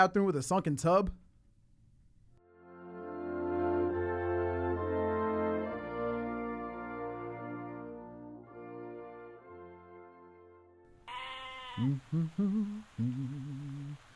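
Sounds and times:
speech: 0.0 - 1.2, 11.8 - 13.6
sustained musical chords: 2.6 - 10.4
goats bleating: 11.0 - 12.4.

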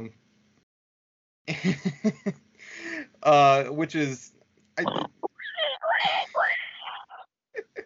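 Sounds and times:
speech: 0.0 - 0.2, 1.5 - 5.2
people imitating pig grunts, oinks and squeals: 4.8 - 7.2.

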